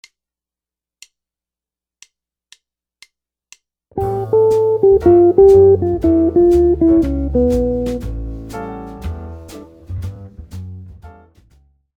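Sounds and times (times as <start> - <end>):
guitar playing melodic minor licks: 4.0 - 8.4.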